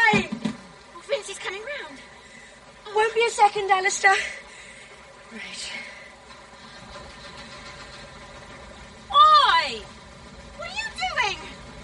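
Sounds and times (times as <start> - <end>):
motorboat engine running as the boat leaves: 0.0 - 11.8
speech: 0.1 - 0.4, 3.1 - 4.4, 5.3 - 5.9, 9.6 - 9.9.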